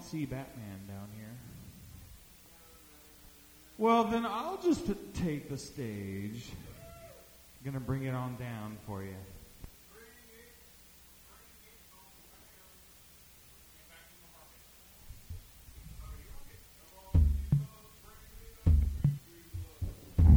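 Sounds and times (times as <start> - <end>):
faint static hiss: 0.0 - 20.3
speech: 0.1 - 1.6, 3.8 - 6.7, 7.6 - 9.4
person's heartbeat thumps: 17.2 - 17.7, 18.7 - 20.3.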